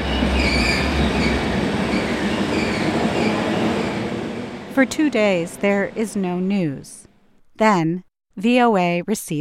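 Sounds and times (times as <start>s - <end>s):
train rolling along the rails with a loud rumble: 0.0s - 7.0s
speech: 4.8s - 7.0s, 7.6s - 9.3s.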